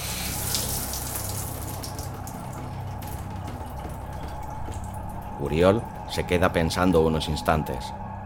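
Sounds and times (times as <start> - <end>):
water drops falling onto a ceramic shower tray: 0.0 - 6.1
speech: 5.4 - 8.0.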